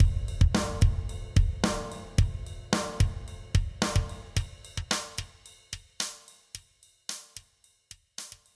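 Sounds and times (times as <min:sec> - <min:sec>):
drums with passive EQ sweep low to high: 0:00.0 - 0:08.5.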